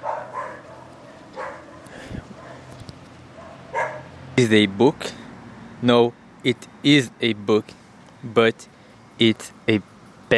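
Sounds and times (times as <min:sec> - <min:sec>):
dog barking: 0:00.0 - 0:02.8, 0:03.4 - 0:04.1
speech: 0:04.4 - 0:05.2, 0:05.8 - 0:10.3.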